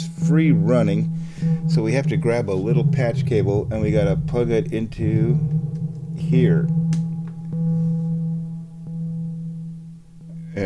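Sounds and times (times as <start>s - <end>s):
synthesizer echo tail as a low electronic hum: 0.2s - 9.7s
speech: 0.3s - 6.8s.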